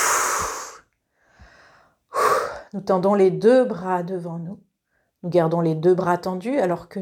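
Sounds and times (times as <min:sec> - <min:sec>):
person exhaling during a breathing exercise with tensed arms: 0:00.0 - 0:02.7
soft airy breath: 0:00.0 - 0:02.7
speech: 0:02.7 - 0:06.9.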